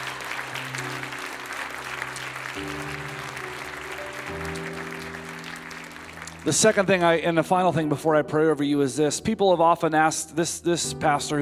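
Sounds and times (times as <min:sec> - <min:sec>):
large crowd applauding: 0:00.0 - 0:07.7
organ or keyboard chords: 0:00.0 - 0:11.3
speech: 0:02.6 - 0:03.1, 0:06.4 - 0:11.3.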